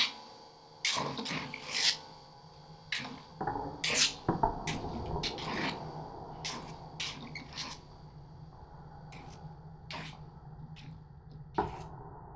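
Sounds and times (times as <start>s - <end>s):
small kinetic drawing machine humming: 0.0s - 11.8s
small kinetic drawing machine scratching and rubbing: 0.9s - 2.1s, 2.9s - 5.8s, 6.5s - 7.9s, 9.2s - 10.2s.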